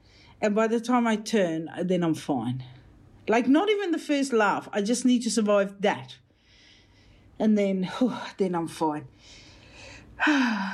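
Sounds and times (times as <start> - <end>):
speech: 0.4 - 6.2, 7.4 - 9.4, 10.2 - 10.7
shallow nervous breathing: 6.3 - 7.4, 9.1 - 10.7.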